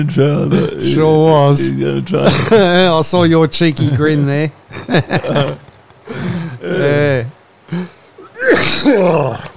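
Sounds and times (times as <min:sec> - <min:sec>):
speech: 0:00.0 - 0:08.0, 0:08.6 - 0:09.5
person laughing: 0:02.1 - 0:03.0, 0:04.7 - 0:05.7.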